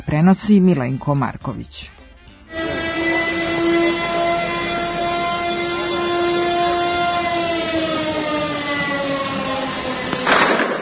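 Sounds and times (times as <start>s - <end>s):
speech: 0.0s - 2.0s
police siren during an arrest in northern Kosovska Mitrovica: 2.5s - 10.8s.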